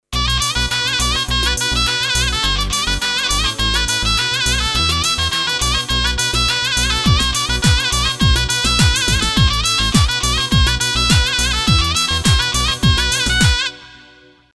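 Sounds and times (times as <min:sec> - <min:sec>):
zurna: 0:00.1 - 0:14.4.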